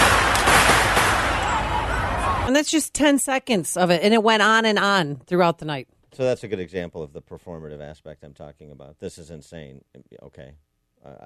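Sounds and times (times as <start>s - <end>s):
dense rumbling outdoor din: 0.0s - 2.5s
fireworks exploding downtown at night: 0.0s - 2.5s
speech: 2.5s - 11.2s.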